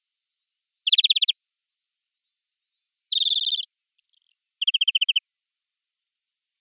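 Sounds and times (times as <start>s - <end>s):
European greenfinch trilling and buzzing: 0.8s - 1.3s, 3.1s - 5.2s.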